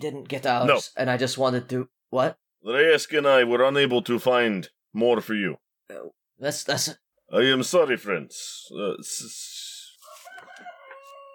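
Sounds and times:
speech: 0.0 - 9.6
chicken crowing: 10.0 - 11.3.

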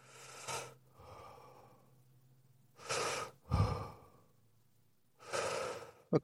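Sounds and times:
person breathing in and out during a neck stretch: 0.0 - 2.0, 2.8 - 4.4, 5.2 - 6.1.

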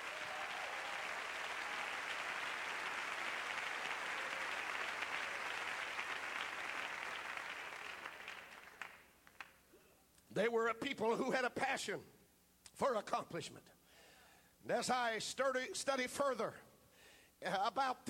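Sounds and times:
large audience clapping hands: 0.0 - 9.6
speech: 10.4 - 12.2, 12.8 - 13.8, 14.6 - 16.7, 17.4 - 18.0.

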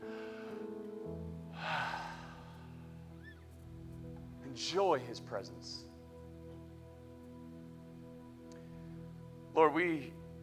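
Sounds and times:
worship congregation taking a deep breath together: 0.0 - 0.7, 1.5 - 3.0
speech: 4.6 - 5.9, 9.6 - 10.2.

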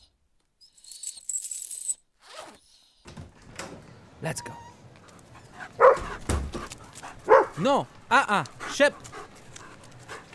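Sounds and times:
speech: 4.2 - 4.7, 7.6 - 9.1
dog barking excitedly: 5.6 - 6.3, 7.1 - 7.7.

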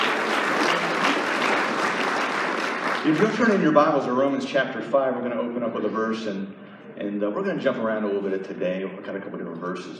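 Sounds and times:
congregation applause in a church: 0.0 - 4.0
speech: 3.0 - 9.9.

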